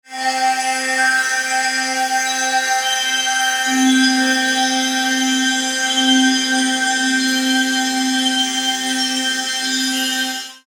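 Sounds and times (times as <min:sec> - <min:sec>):
tanpura: 0:00.1 - 0:10.6.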